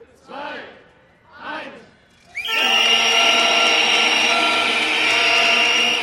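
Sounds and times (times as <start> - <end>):
crowd protest noise at a railway station construction site: 0.0 - 6.0
shrill whistles: 2.3 - 6.0
horns blaring: 2.4 - 6.0
shouted calls ending a countdown: 2.4 - 6.0.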